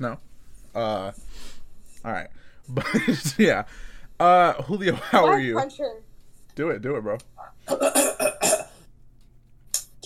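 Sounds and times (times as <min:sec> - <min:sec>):
speech: 0:00.0 - 0:08.2
man clearing his throat: 0:07.7 - 0:08.8.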